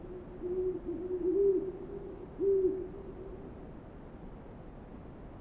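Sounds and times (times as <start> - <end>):
owl hooting: 0.0 - 3.6
background hiss: 0.0 - 5.1.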